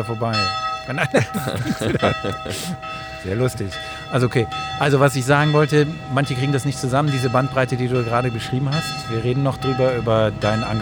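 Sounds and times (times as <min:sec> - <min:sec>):
speech: 0:00.0 - 0:10.8
laughter: 0:01.0 - 0:02.8
Protestant church bells ringing: 0:02.8 - 0:10.8.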